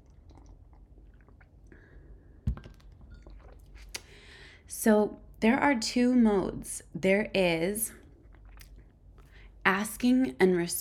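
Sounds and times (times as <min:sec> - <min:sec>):
person sipping coffee from a mug: 0:00.0 - 0:02.2, 0:02.9 - 0:04.1
speech: 0:04.8 - 0:08.0, 0:09.8 - 0:10.7.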